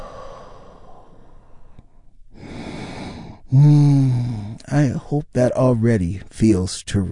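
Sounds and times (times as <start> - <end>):
deep breath exhale: 0.0 - 4.6
speech: 3.5 - 7.1.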